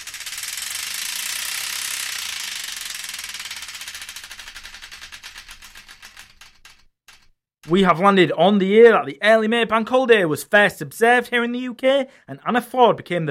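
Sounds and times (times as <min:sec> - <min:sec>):
prize wheel spinning with rapid clicks: 0:00.0 - 0:08.0
speech: 0:07.6 - 0:13.3.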